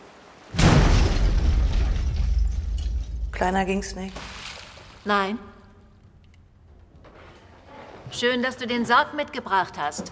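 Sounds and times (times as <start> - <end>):
explosion: 0.6 - 3.4
speech: 3.4 - 4.3, 5.0 - 5.5, 8.1 - 10.1.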